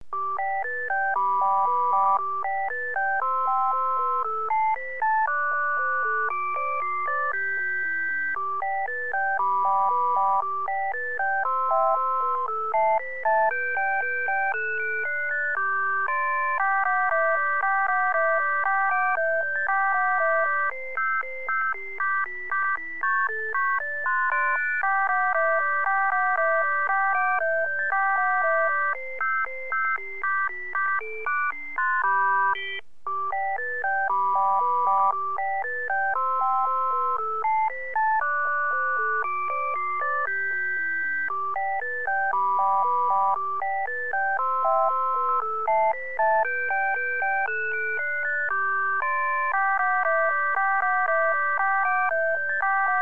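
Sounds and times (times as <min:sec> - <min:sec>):
Christmas song: 0:00.3 - 0:52.9.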